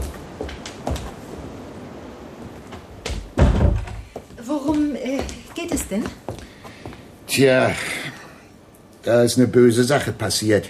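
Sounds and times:
low steady rush: 0:00.0 - 0:10.6
dull knocks: 0:03.0 - 0:05.4
door being closed against a draught: 0:03.1 - 0:04.1
heavy thud: 0:03.3 - 0:04.2
speech: 0:05.8 - 0:06.3, 0:07.4 - 0:08.0, 0:09.0 - 0:10.6.

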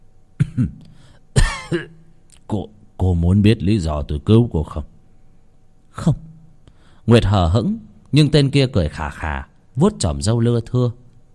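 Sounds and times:
older man coughing hoarsely sitting under a tree: 0:00.4 - 0:02.1
speech: 0:00.6 - 0:00.9, 0:01.7 - 0:04.9, 0:06.0 - 0:06.2, 0:07.1 - 0:11.0.

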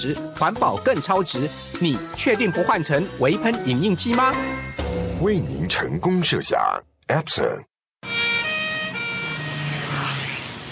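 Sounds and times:
speech: 0:00.0 - 0:07.7
ambulance siren wailing in road traffic: 0:08.0 - 0:10.7.

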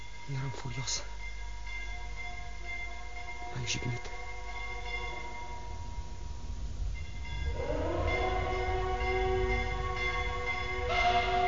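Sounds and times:
speech: 0:00.3 - 0:01.2, 0:03.6 - 0:04.2
low rumble: 0:01.2 - 0:11.4
mournful siren-like horn sounding through fog: 0:04.1 - 0:06.0, 0:07.4 - 0:11.4.

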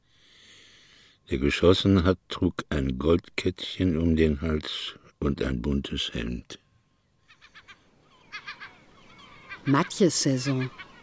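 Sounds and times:
soft hiss: 0:00.0 - 0:11.0
speech: 0:01.3 - 0:06.6, 0:09.6 - 0:10.9
gulls screeching as fishing boats land herring: 0:07.2 - 0:11.0.

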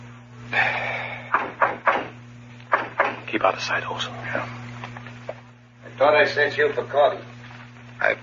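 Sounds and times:
low steady electrical hum: 0:00.0 - 0:08.2
firm knocks on a wooden door: 0:01.4 - 0:03.2
speech: 0:03.3 - 0:04.6, 0:06.0 - 0:07.3, 0:08.0 - 0:08.2.

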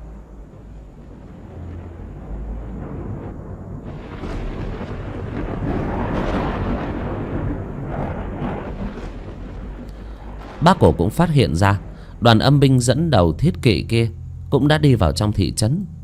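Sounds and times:
thunder rumbling across the sky: 0:00.0 - 0:16.0
speech: 0:10.6 - 0:16.0.

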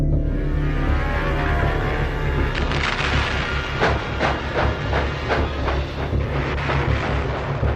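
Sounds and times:
passenger train rumbling through Germany: 0:00.2 - 0:07.7.

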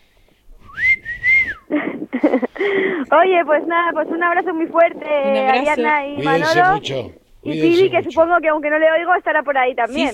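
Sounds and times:
person whistling: 0:00.6 - 0:01.7
speech: 0:02.2 - 0:10.1.

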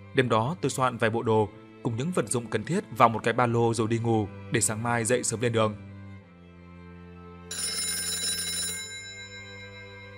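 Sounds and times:
speech: 0:00.2 - 0:05.9
alarm clock bell ringing loudly: 0:07.5 - 0:10.1.

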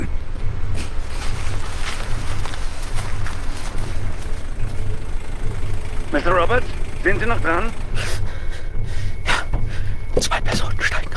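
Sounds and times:
car engine rumble as a car arrives outside a building: 0:00.0 - 0:11.1
continuous broadband road noise: 0:00.0 - 0:11.1
speech: 0:06.2 - 0:08.1.

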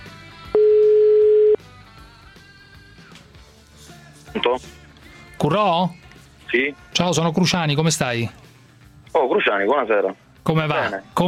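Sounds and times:
telephone ringback tone as a call is placed: 0:00.6 - 0:01.6
speech: 0:04.4 - 0:04.8, 0:05.4 - 0:08.4, 0:09.2 - 0:11.2.

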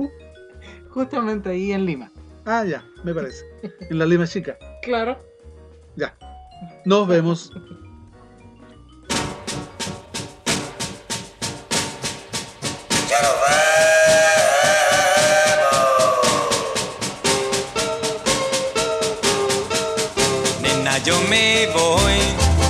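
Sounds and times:
speech: 0:01.0 - 0:05.3, 0:06.0 - 0:07.8
steam locomotive chuffing at a railway station platform: 0:09.1 - 0:22.6
steam locomotive multi-tone whistle at a railway station platform: 0:13.0 - 0:18.5.

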